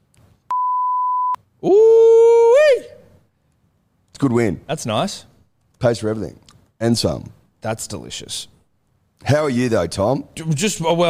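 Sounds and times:
censor beep: 0:00.5 - 0:01.4
speech: 0:01.6 - 0:02.0, 0:04.2 - 0:08.6, 0:09.2 - 0:11.0.

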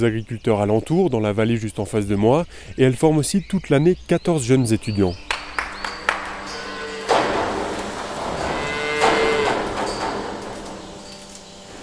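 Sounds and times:
speech: 0:00.0 - 0:05.3
cows shuffling into a milking parlour: 0:04.8 - 0:11.8
sharp metallic clanks in an agricultural school milking parlour: 0:05.4 - 0:11.8
cow mooing low: 0:05.6 - 0:11.8.

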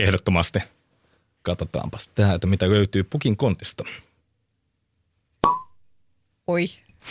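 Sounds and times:
speech: 0:00.0 - 0:00.8, 0:01.4 - 0:04.1, 0:06.5 - 0:07.0
cork popping from a bottle of red wine in a studio: 0:05.4 - 0:05.8.

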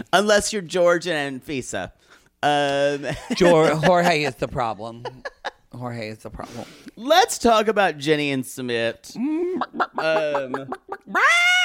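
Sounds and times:
speech: 0:00.1 - 0:11.6
laughter: 0:03.0 - 0:05.6, 0:09.2 - 0:11.6
chicken squawking: 0:11.1 - 0:11.6.

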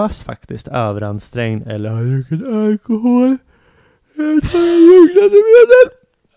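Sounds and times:
speech: 0:00.0 - 0:03.5, 0:04.2 - 0:06.0
person yawning with open mouth: 0:02.2 - 0:03.5, 0:04.1 - 0:06.0.

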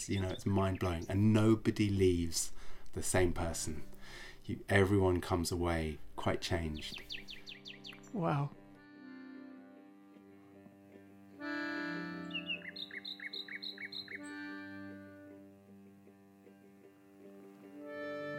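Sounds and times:
nightingale singing: 0:00.0 - 0:02.0, 0:06.5 - 0:08.3, 0:12.1 - 0:14.6
speech: 0:00.0 - 0:07.4, 0:08.1 - 0:08.6.

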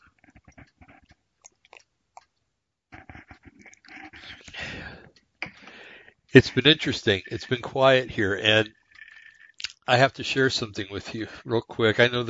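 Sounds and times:
person sipping a drink: 0:00.0 - 0:02.3, 0:02.9 - 0:06.2, 0:08.8 - 0:09.8
wet mouth clicks: 0:00.0 - 0:05.8, 0:08.8 - 0:09.9
gulping and swallowing: 0:00.0 - 0:09.9
speech: 0:06.3 - 0:08.8, 0:09.9 - 0:12.2.

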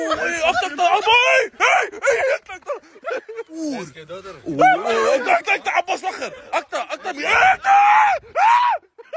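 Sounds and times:
laughter: 0:00.0 - 0:09.1
person screaming in fright at a snake: 0:07.2 - 0:08.9.

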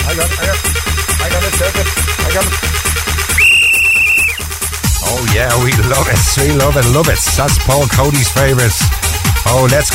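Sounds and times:
pounding fast dance beat: 0:00.1 - 0:09.9
loud sustained whistle blast: 0:03.3 - 0:04.5
speech: 0:05.4 - 0:09.9.

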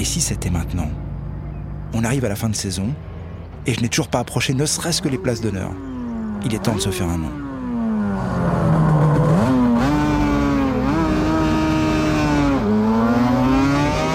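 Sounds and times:
speech: 0:00.0 - 0:01.1, 0:01.9 - 0:07.4
racing motorcycles accelerating off the line at a race start, shifting gears: 0:04.5 - 0:14.1.

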